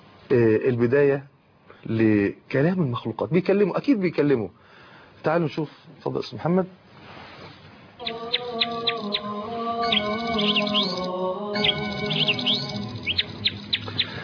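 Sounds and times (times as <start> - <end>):
speech: 0.3 - 6.8
small birds chirping: 8.0 - 14.2
steady humming tone: 8.0 - 14.2.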